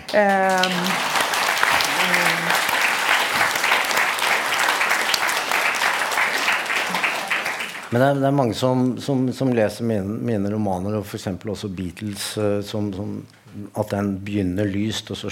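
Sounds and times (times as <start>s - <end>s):
sizeable crowd applauding: 0.0s - 8.1s
speech: 0.1s - 1.1s, 7.9s - 15.3s
cheer: 0.6s - 7.8s.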